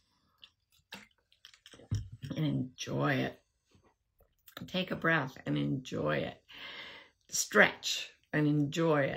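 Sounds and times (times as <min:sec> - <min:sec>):
person sipping water: 0:00.0 - 0:02.3
speech: 0:02.4 - 0:03.4, 0:04.6 - 0:09.1.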